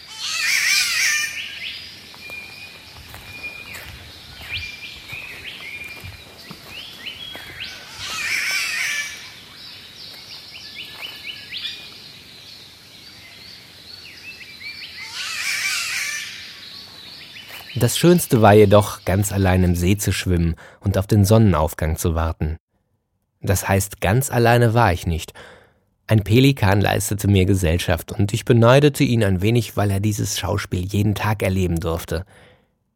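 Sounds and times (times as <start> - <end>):
green catbird calls: 0.0 - 20.0
speech: 17.8 - 22.6, 23.4 - 32.5.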